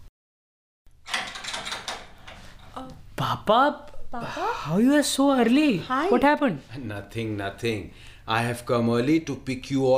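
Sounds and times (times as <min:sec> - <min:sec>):
door opening with rattling latch and scraping hinges: 0:01.0 - 0:02.5
speech: 0:03.2 - 0:09.9.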